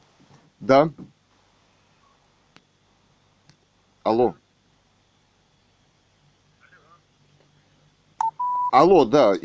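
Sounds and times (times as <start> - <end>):
speech: 0.7 - 1.1, 4.1 - 4.4, 8.7 - 9.4
short electronic beep on a phone line: 8.2 - 8.7.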